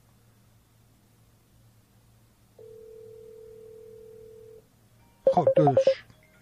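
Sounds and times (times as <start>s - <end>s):
faint hum: 0.0s - 6.4s
telephone line ringing tone for a call-in: 2.6s - 4.6s, 5.3s - 6.0s
speech: 5.4s - 6.1s.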